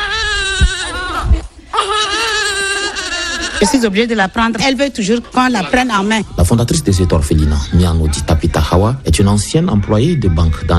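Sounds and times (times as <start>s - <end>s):
one-month-old infant crying in long strained wails: 0.0s - 4.0s
speech: 3.6s - 10.7s.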